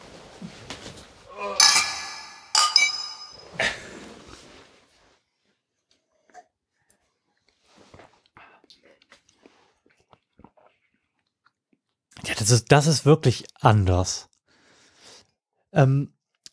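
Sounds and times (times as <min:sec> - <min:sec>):
craft beer glasses clinking in a toast: 0:01.5 - 0:03.6
speech: 0:12.5 - 0:14.3, 0:15.8 - 0:16.2.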